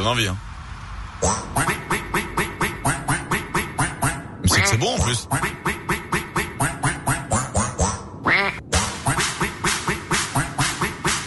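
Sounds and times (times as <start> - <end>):
speech: 0.0 - 0.5, 1.2 - 1.6, 4.6 - 5.8
duck quacking: 1.6 - 7.4, 8.2 - 11.2.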